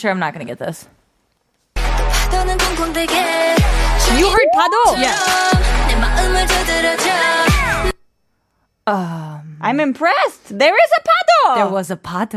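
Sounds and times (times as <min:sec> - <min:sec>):
speech: 0:00.0 - 0:01.0, 0:02.4 - 0:07.4, 0:08.8 - 0:12.3
K-pop song sped up with squeaky chipmunk-like vocals: 0:02.9 - 0:07.2.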